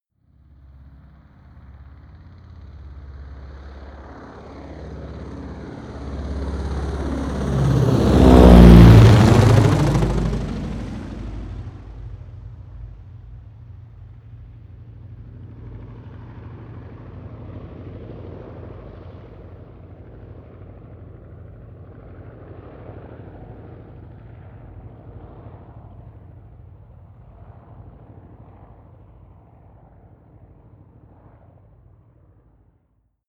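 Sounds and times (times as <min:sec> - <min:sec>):
Ju52 propeller plane flying overhead: 0:00.2 - 0:32.7.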